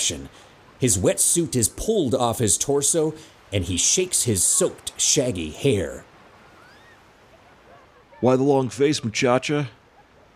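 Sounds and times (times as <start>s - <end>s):
speech: 0.0s - 6.1s, 8.2s - 9.8s
calm ocean waves: 0.0s - 10.3s
faint thin whistling tones: 6.5s - 8.0s.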